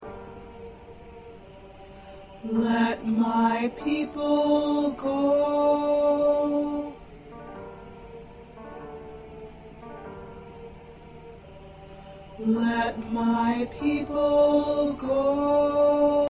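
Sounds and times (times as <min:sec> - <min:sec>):
alto voice singing in an SATB choir: 0:00.0 - 0:16.2.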